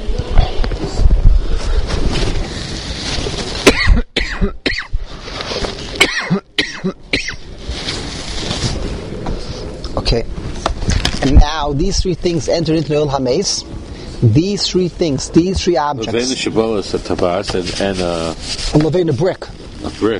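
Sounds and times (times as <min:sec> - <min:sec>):
steady hiss: 0:00.0 - 0:20.1
person coughing harshly: 0:03.6 - 0:04.9, 0:06.0 - 0:07.4
speech: 0:11.8 - 0:20.1.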